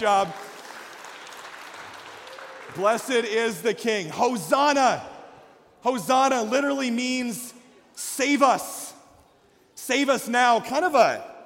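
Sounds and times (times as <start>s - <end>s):
speech: 0.0s - 0.5s, 2.7s - 5.1s, 5.8s - 8.8s, 9.9s - 11.3s
crowd clapping: 0.0s - 3.6s.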